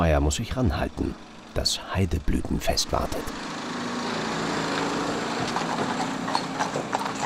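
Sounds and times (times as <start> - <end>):
speech: 0.0 - 3.5
steady low mechanical hum: 0.0 - 7.2
horse hooves clip-clopping while being led: 4.7 - 7.2.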